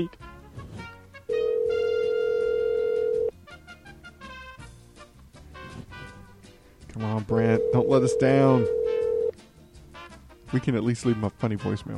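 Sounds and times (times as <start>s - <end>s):
speech: 0.0s - 0.2s, 7.0s - 8.8s, 10.5s - 11.9s
light music: 0.0s - 11.9s
telephone ringback tone as a call connects: 1.3s - 3.3s, 7.5s - 9.3s.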